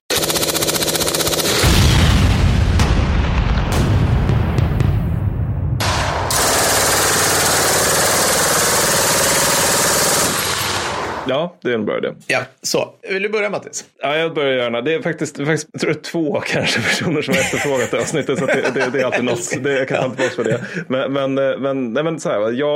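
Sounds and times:
rapid machine gun fire: 0:00.1 - 0:05.2, 0:05.8 - 0:11.2
loud explosions: 0:01.6 - 0:08.0
speech: 0:11.3 - 0:22.7
laughter: 0:16.4 - 0:21.2.

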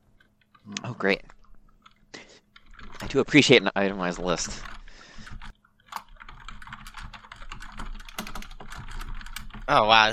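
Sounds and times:
speech: 0:01.0 - 0:01.3, 0:03.1 - 0:04.7, 0:09.7 - 0:10.1
rapid steady typing on a computer keyboard: 0:01.7 - 0:03.2, 0:04.0 - 0:09.8.

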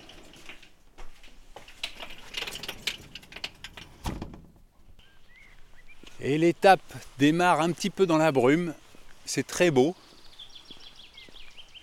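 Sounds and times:
birds chirping and trilling outdoors: 0:04.7 - 0:11.8
speech: 0:06.2 - 0:10.0.

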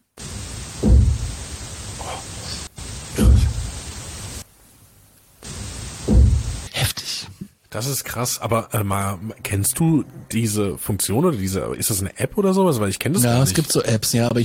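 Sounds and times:
steady hiss of noise: 0:00.0 - 0:14.4
dull knocks in a played recording: 0:00.8 - 0:01.3, 0:06.0 - 0:06.6
speech: 0:07.8 - 0:14.4.

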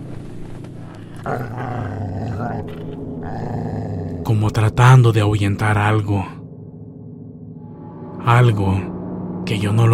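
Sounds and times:
dog growling aggressively: 0:00.9 - 0:04.3
speech: 0:01.2 - 0:03.7, 0:04.3 - 0:06.4, 0:08.3 - 0:08.9, 0:09.5 - 0:09.9.

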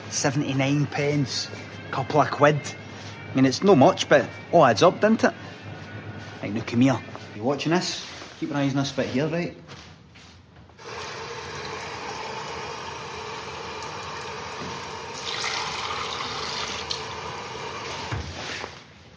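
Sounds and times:
speech: 0:00.1 - 0:05.4, 0:06.4 - 0:09.6
tap water running: 0:10.8 - 0:18.3.

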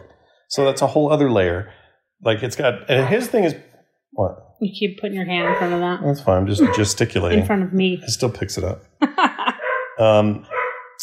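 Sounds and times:
speech: 0:00.5 - 0:09.4, 0:10.0 - 0:10.6
dog barking with a whiny yelping edge: 0:02.9 - 0:03.5, 0:05.3 - 0:06.0, 0:06.6 - 0:07.1, 0:09.6 - 0:11.0
laughter: 0:06.5 - 0:07.4, 0:09.0 - 0:10.4.

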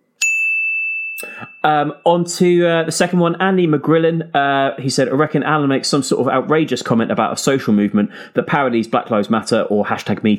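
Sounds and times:
bright bell ding for a correct answer: 0:00.2 - 0:02.1
speech: 0:01.2 - 0:10.3.

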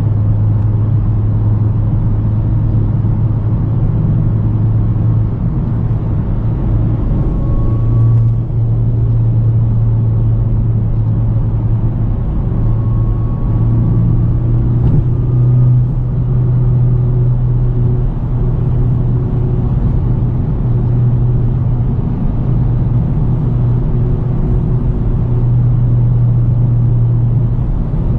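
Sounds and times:
steady low car engine drone heard inside a car while driving: 0:00.0 - 0:28.1.

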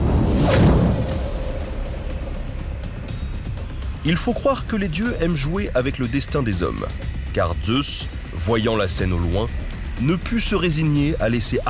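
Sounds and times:
arrow shot from a bow whooshing through the air: 0:00.0 - 0:01.8
steady low rumble: 0:00.0 - 0:11.6
speech: 0:04.0 - 0:11.6.

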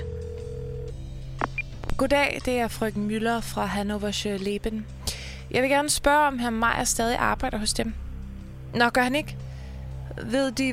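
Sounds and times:
steady telephone line tone: 0:00.0 - 0:01.7
short electronic telephone dialing beeps: 0:01.4 - 0:01.8
speech: 0:02.0 - 0:08.0, 0:08.7 - 0:09.4, 0:10.2 - 0:10.7.

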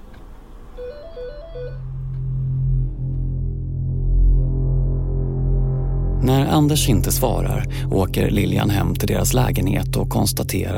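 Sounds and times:
electronic telephone ring warbling between two pitches, unanswered: 0:00.8 - 0:01.8
steady low droning hum: 0:01.4 - 0:10.7
speech: 0:06.2 - 0:10.7.

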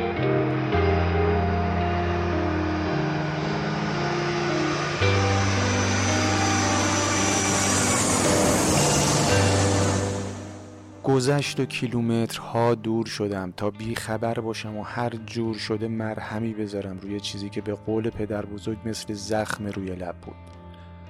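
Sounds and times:
airplane engine and cabin roar: 0:00.0 - 0:11.0
sustained musical tones: 0:00.0 - 0:13.0
speech: 0:11.2 - 0:20.6.

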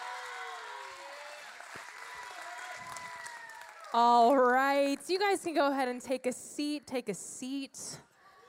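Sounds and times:
audience whistles and cheers: 0:00.0 - 0:04.0
youth ministry church audience clapping to welcome a speaker: 0:00.0 - 0:05.1
speech: 0:03.9 - 0:08.1.

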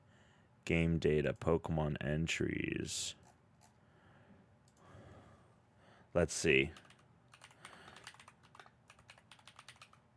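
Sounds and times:
low hum: 0:00.0 - 0:10.1
speech: 0:00.7 - 0:03.2, 0:06.1 - 0:06.8
typing on a computer keyboard: 0:06.7 - 0:10.1.

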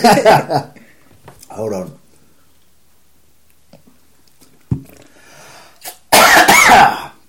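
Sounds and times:
speech: 0:00.0 - 0:00.8, 0:01.5 - 0:02.0
person coughing after swallowing coffee grounds: 0:06.1 - 0:07.2.

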